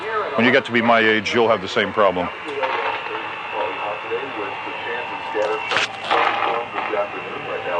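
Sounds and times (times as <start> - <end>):
constant whine: 0.0 - 7.7
speech: 0.4 - 2.5
radio static hissing while turning a loop antenna: 1.2 - 7.7
garbled broadcast fragments: 1.6 - 7.7
radio crackling bursts as the reception shifts: 2.2 - 7.4.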